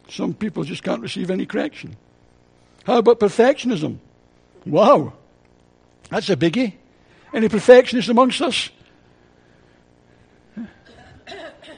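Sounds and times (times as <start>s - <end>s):
speech: 0.1s - 2.1s, 2.8s - 5.2s, 6.1s - 8.8s
audience coughing: 10.5s - 11.7s.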